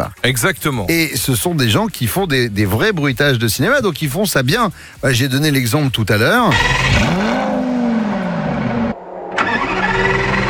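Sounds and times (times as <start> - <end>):
speech: 0.2 - 7.3
Lamborghini V10 engine starting and revving: 6.5 - 10.4.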